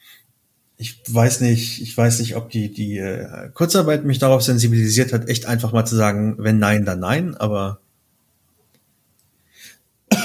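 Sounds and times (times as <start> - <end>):
speech: 0.8 - 7.8
soft intake of breath: 9.4 - 9.9.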